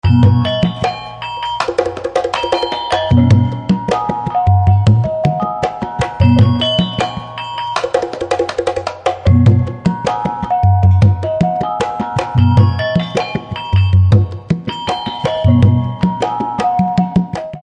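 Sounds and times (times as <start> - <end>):
pamayang drums from Sunda: 0.0 - 17.6.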